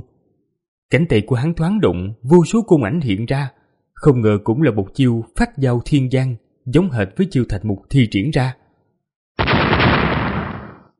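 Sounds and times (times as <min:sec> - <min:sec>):
speech: 0:00.9 - 0:08.6
loud explosive blast from clashing magic bow shadows: 0:09.4 - 0:10.9.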